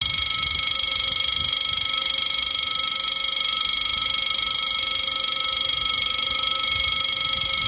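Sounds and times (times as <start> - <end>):
SNCF train station chime: 0.0 - 7.6.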